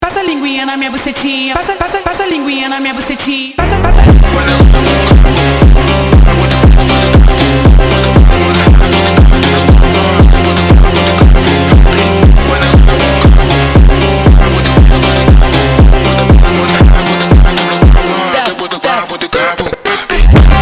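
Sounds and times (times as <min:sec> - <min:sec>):
malevolent funk music: 0:03.6 - 0:20.5.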